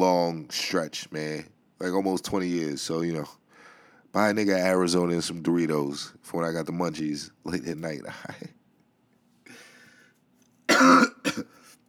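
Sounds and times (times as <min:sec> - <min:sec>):
speech: 0:00.0 - 0:03.4, 0:04.1 - 0:08.6, 0:10.8 - 0:11.6
person coughing: 0:10.7 - 0:11.7.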